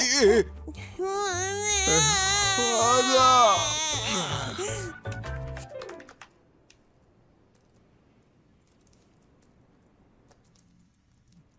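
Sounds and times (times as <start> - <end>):
speech: 0.2 - 5.0
child crying in wavering wails: 1.0 - 4.9.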